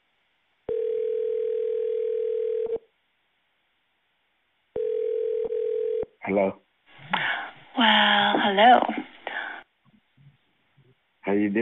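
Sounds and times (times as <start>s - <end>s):
telephone dial tone before a three-way call: 0.7s - 2.8s, 4.8s - 6.1s
speech: 6.3s - 6.6s, 7.8s - 9.0s, 11.3s - 11.6s.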